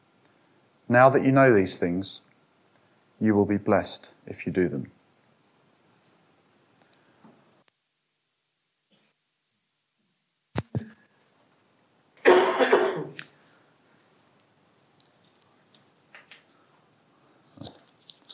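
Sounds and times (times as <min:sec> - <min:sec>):
speech: 0:00.9 - 0:02.3, 0:03.2 - 0:05.0
loud rough cough burst: 0:12.2 - 0:13.2
short throat clearing: 0:12.2 - 0:13.2.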